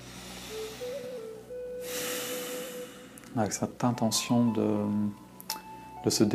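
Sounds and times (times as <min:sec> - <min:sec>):
deep breath during a guided relaxation exercise: 0:00.0 - 0:03.3
steady sustained tone: 0:00.0 - 0:06.1
speech: 0:03.4 - 0:05.2, 0:06.0 - 0:06.3.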